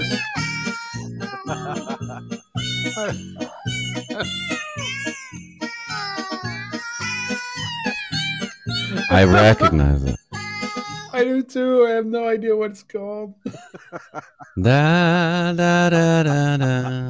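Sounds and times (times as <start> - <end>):
cats meowing loudly: 0.0 - 1.9, 2.6 - 11.1
laughter: 1.2 - 2.4, 9.0 - 10.2, 13.5 - 14.9, 16.0 - 17.0
speech: 2.2 - 5.2, 9.1 - 10.2, 11.2 - 17.0.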